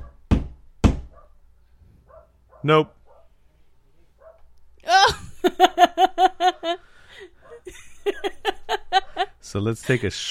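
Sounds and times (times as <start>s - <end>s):
dog barking: 0.0s - 0.3s, 1.1s - 1.4s, 2.0s - 3.4s, 4.2s - 4.5s, 7.4s - 7.7s
speech: 2.6s - 3.0s, 5.4s - 8.4s, 9.4s - 10.3s
laughter: 4.9s - 10.3s.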